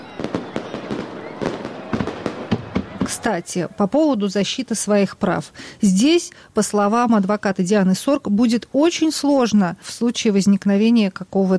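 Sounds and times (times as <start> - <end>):
fireworks salute bursting: 0.0 - 3.8
speech: 3.1 - 11.5.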